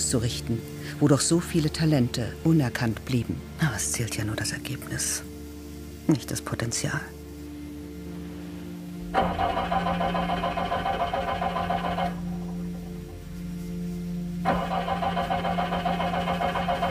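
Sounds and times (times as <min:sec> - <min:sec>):
speech: 0:00.1 - 0:05.3, 0:06.1 - 0:07.2
car engine giving a hoarse rattling drone: 0:09.1 - 0:13.4, 0:14.5 - 0:16.8.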